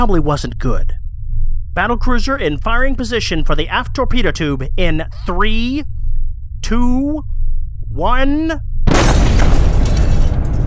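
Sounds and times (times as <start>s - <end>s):
speech: 0.0s - 1.0s, 1.8s - 5.9s, 6.6s - 7.3s, 7.9s - 8.7s
heavy depth charge exploding against a submarine hull: 8.8s - 10.6s.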